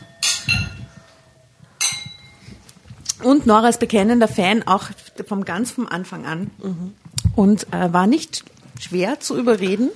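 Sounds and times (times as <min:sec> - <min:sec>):
glasses clinking together in a toast: 0:00.0 - 0:01.1, 0:01.8 - 0:02.6
speech: 0:03.2 - 0:09.9.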